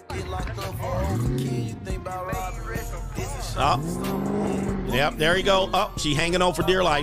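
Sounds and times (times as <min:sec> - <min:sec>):
Scat Pack muscle car engine revving as it pulls away: 0:00.2 - 0:05.8
speech: 0:03.6 - 0:07.0.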